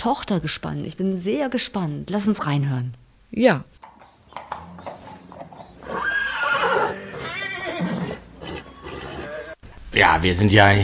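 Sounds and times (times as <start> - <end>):
speech: 0.0 - 3.9, 10.0 - 10.8
horse hoof clops: 3.8 - 7.3
horse neighing with a drawn-out whinny: 4.3 - 9.6.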